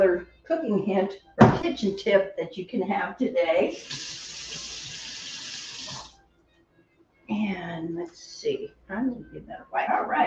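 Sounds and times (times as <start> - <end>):
speech: 0.0 - 4.7, 7.3 - 10.2
tap water running into a kitchen sink as food is washed: 3.8 - 6.1.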